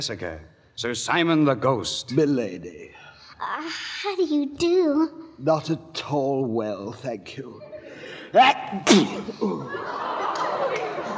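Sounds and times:
speech: 0.0 - 10.8
laughter: 7.6 - 11.1
person sneezing: 8.6 - 9.7.

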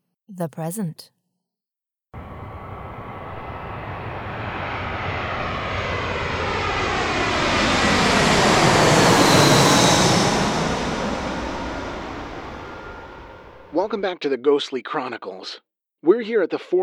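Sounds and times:
speech: 0.3 - 1.2, 13.8 - 16.8
airplane engine roar flying over on the Midway Airport flight path in Chicago: 2.2 - 13.8.

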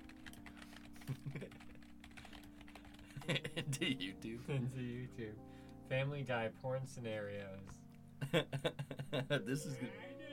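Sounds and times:
typing on a computer keyboard: 0.0 - 3.8
speech: 1.1 - 1.7, 3.2 - 10.1.

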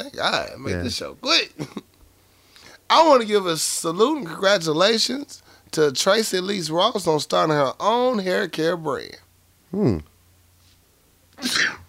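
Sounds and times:
speech: 0.2 - 1.8, 2.9 - 10.1, 11.4 - 11.8
person sneezing: 11.4 - 11.8.

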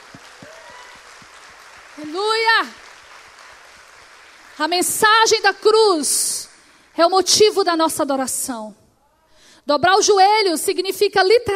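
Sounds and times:
audience applauding: 0.0 - 7.0
speech: 2.0 - 2.8, 4.6 - 6.4, 7.0 - 8.8, 9.6 - 11.5.

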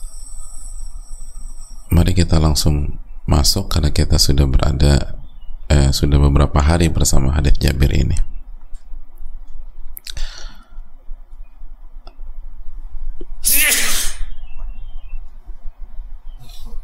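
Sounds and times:
faint hum: 0.0 - 16.8
speech: 1.9 - 8.3
person sneezing during a hadith lesson: 13.4 - 14.3.

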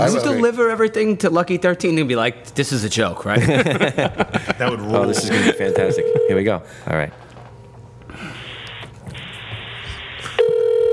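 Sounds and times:
speech: 0.0 - 7.2
laughter: 3.3 - 6.4
phone dialing tone: 5.8 - 6.3, 10.3 - 10.9
phone line hiss: 8.4 - 10.9.

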